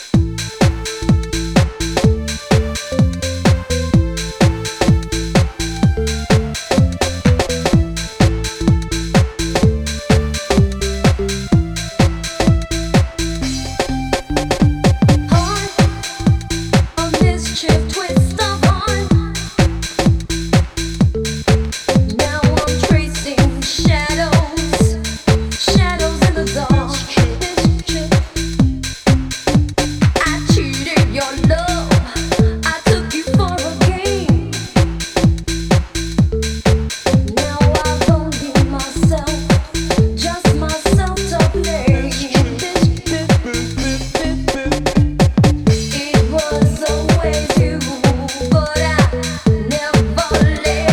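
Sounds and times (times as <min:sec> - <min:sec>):
soul bass line remix: 0:00.2 - 0:50.9.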